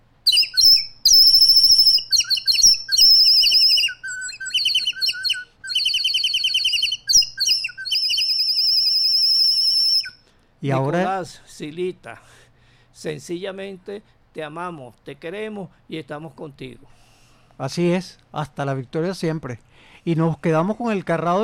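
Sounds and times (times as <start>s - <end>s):
small native songbird singing: 0.3s - 10.2s
speech: 10.6s - 12.4s, 13.0s - 17.0s, 17.6s - 21.4s.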